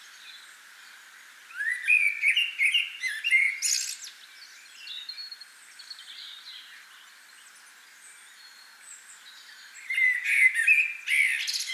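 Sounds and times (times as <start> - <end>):
common blackbird Turdus merula singing: 1.5 - 7.0, 8.2 - 11.7.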